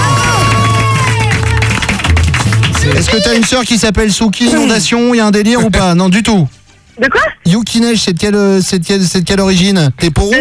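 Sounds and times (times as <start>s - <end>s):
studio audience applauding and cheering: 0.0s - 4.0s
speech: 3.1s - 10.3s.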